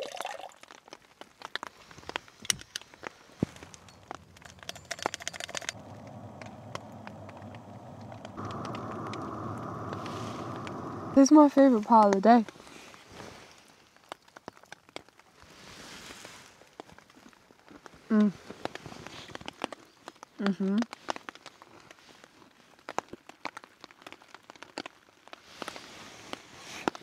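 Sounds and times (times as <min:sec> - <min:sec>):
rain on a hard surface: 0:00.1 - 0:27.0
footsteps: 0:01.8 - 0:11.2
sharp drips: 0:03.5 - 0:11.3
speech: 0:11.2 - 0:12.6, 0:20.6 - 0:20.9.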